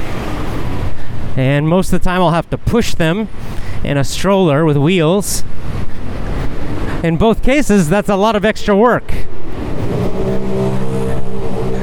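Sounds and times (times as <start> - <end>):
road traffic noise from passing cars: 0.0 - 11.8
speech: 1.4 - 6.0, 7.0 - 9.4
low humming tone: 9.4 - 11.8.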